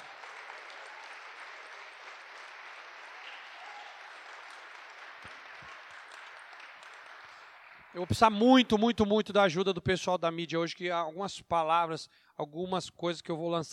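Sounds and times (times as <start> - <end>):
church audience applauding: 0.0 - 8.6
speech: 7.9 - 13.7.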